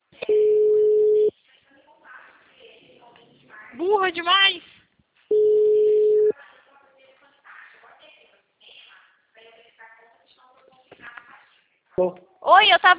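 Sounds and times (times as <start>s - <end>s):
telephone busy tone after a dropped call: 0.2s - 1.3s, 5.3s - 6.3s
speech: 3.8s - 4.7s, 12.0s - 12.9s.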